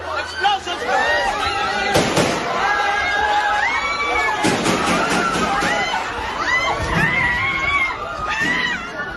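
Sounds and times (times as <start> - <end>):
chaotic crowd shouting and screaming: 0.0 - 9.1
gunshots in a senate building: 1.9 - 2.5, 4.4 - 5.8
bangs in quick bursts: 4.4 - 5.8.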